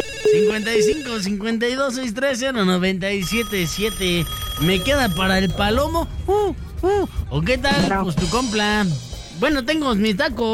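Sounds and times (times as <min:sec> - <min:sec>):
telephone ringing for an incoming call: 0:00.0 - 0:01.5, 0:03.2 - 0:06.3
speech: 0:00.3 - 0:10.5.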